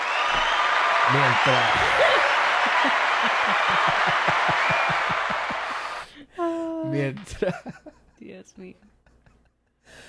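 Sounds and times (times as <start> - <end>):
crowd applause with rhythmic clapping: 0.0 - 6.1
speech: 1.1 - 5.3, 6.9 - 8.9
laughter: 1.2 - 6.0, 7.0 - 9.8.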